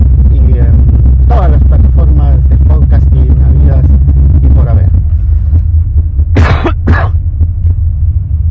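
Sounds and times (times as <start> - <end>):
low rumbling hum: 0.0 - 8.5
person coughing: 6.4 - 7.2.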